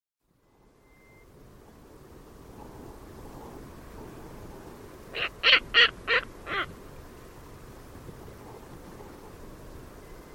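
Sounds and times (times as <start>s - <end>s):
harsh hoarse caw-like bird calls: 5.1s - 6.7s.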